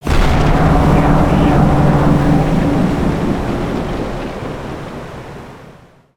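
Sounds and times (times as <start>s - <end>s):
siege tower impact: 0.0s - 5.6s.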